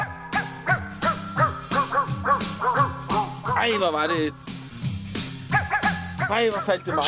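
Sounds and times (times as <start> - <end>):
dog barks and yips arranged into a pop song melody: 0.0 - 3.7, 5.5 - 7.0
speech: 3.6 - 4.5, 6.3 - 7.0.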